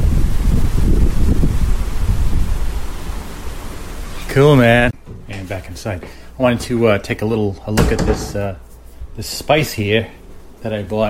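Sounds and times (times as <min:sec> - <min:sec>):
strong wind gust: 0:00.0 - 0:04.2
speech: 0:04.4 - 0:08.6, 0:09.2 - 0:11.0.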